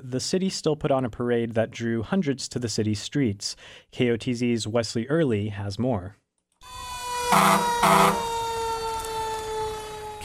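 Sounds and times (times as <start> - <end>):
speech: 0.0 - 8.3
fire truck loud honking blasts: 6.6 - 9.5
fire truck siren wailing during a Fourth of July parade in Kotzebue Alaska: 6.6 - 10.2.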